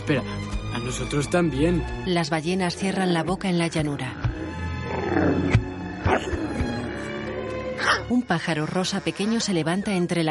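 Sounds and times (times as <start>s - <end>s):
speech: 0.1s - 4.3s, 5.1s - 6.7s, 7.8s - 10.2s
frightened tiger snarling and growling while retreating into the jungle: 4.0s - 9.6s.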